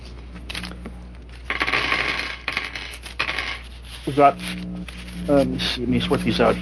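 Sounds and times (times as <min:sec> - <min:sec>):
handful of dice clattering across a hard table: 0:01.5 - 0:03.7
speech: 0:04.0 - 0:04.7, 0:05.3 - 0:06.6.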